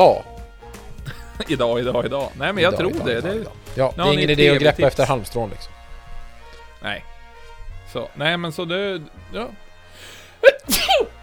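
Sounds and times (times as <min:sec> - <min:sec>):
speech: 0:00.0 - 0:00.3, 0:01.4 - 0:05.8, 0:06.8 - 0:07.1, 0:07.9 - 0:11.1
laughter: 0:01.1 - 0:03.5
single sneeze: 0:10.4 - 0:11.1.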